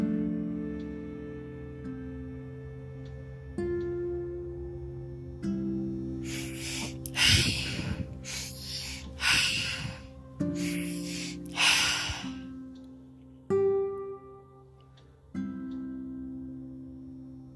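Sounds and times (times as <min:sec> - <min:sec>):
soft sustained musical drone: 0:00.0 - 0:17.5
person breathing deeply and rhythmically in a guided breathing pattern: 0:06.1 - 0:12.9.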